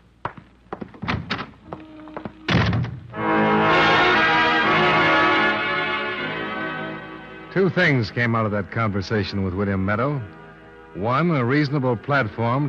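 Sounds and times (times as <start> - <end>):
footsteps: 0.0 - 3.1
door shutting with a solid thunk: 2.5 - 3.0
sustained musical chord: 3.1 - 12.6
speech: 7.6 - 12.6.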